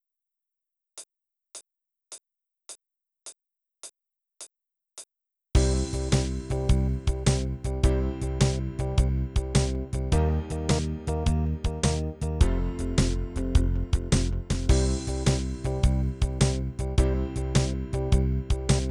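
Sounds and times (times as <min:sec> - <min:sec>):
blues rock shuffle: 0:05.6 - 0:18.9.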